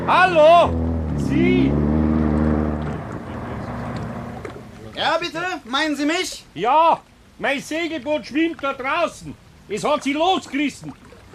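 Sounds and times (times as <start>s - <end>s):
speech: 0.0s - 2.0s, 5.0s - 11.0s
motorboat engine droning on the water: 0.0s - 5.0s.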